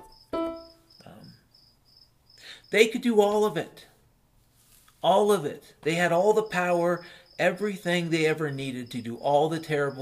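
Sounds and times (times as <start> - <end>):
cricket chirping outside: 0.0 - 3.6, 5.9 - 10.0
speech: 2.7 - 3.9, 5.0 - 10.0.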